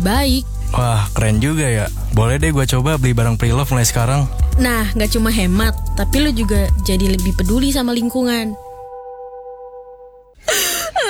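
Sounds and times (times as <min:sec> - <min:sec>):
speech: 0:00.0 - 0:08.6
person crying: 0:10.4 - 0:11.0.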